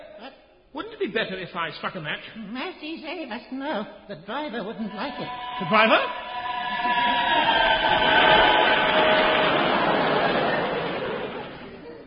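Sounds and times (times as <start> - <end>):
speech: 1.0 - 8.1
high metallic squealing of a passing train: 4.8 - 11.5
train rushing past: 4.8 - 11.8.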